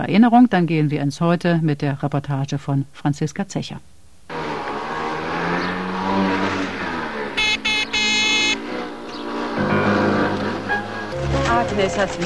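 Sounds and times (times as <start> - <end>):
speech: 0.0 - 4.0, 11.8 - 12.2
small motor scooter engine revving and buzzing: 4.3 - 12.2.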